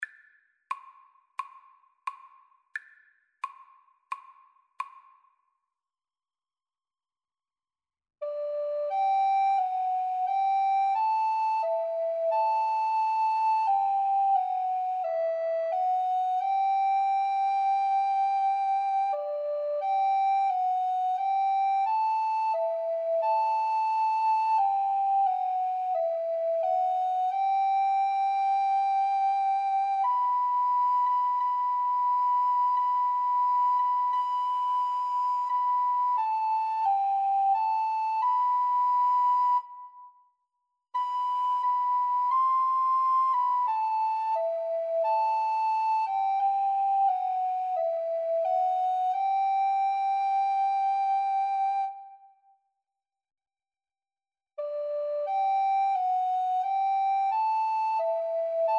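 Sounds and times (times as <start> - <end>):
alto recorder duet: 8.2 - 40.2, 41.0 - 52.4, 54.6 - 58.7.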